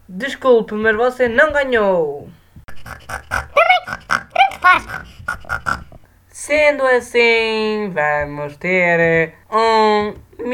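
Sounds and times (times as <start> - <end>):
speech: 0.1 - 4.0, 4.6 - 5.8, 6.4 - 10.5
pig grunting and oinking: 2.7 - 6.0.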